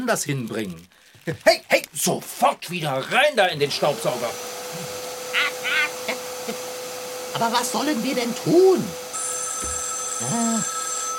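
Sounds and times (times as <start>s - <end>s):
speech: 0.0s - 5.5s, 7.4s - 9.0s, 10.2s - 10.8s
steady high-pitched whine: 7.4s - 11.1s
telephone ringing with a single short electronic tone: 9.1s - 11.1s.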